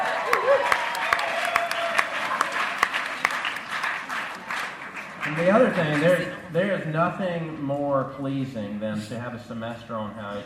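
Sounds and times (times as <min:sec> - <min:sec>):
crowd applauding for a 21st birthday: 0:00.0 - 0:06.4
speech: 0:05.3 - 0:10.4.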